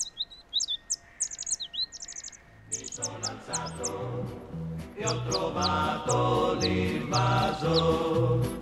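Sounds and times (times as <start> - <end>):
synthetic birdsong from a small solar-powered loudspeaker box in a tree: 0.0 - 8.6
rhythmic low electronic tones: 2.6 - 8.6.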